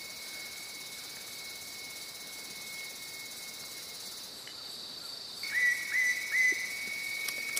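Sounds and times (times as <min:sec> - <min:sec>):
Ringed Woodpecker calling with short whistled notes: 0:05.4 - 0:07.5.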